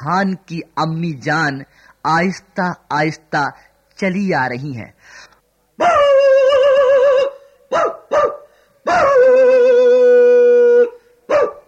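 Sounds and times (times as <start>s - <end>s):
speech: 0.0s - 6.0s
neighbourhood dogs howling at midnight: 5.8s - 7.4s, 8.9s - 11.6s
neighbourhood dogs barking at midnight: 7.2s - 9.4s, 11.3s - 11.6s.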